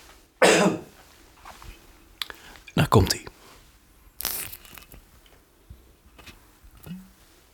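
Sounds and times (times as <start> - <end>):
single sharp loud cough: 0.4 - 0.9
speech: 2.9 - 3.3
tearing crackle of a whiskey bottle seal: 4.2 - 5.0.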